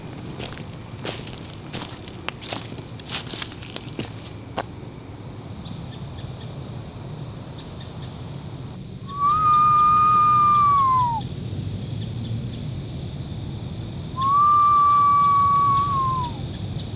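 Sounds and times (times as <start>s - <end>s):
low rumble: 0.0s - 16.9s
northern cardinal whistling clear notes: 9.1s - 11.2s, 14.2s - 16.4s.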